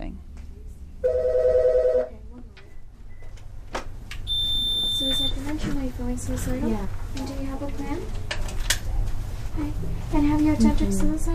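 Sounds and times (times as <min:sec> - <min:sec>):
small indoor noises: 0:00.0 - 0:11.3
electronic telephone ring on a suicide prevention and crisis hotline: 0:01.1 - 0:02.1
speech: 0:06.1 - 0:08.3, 0:09.6 - 0:11.3.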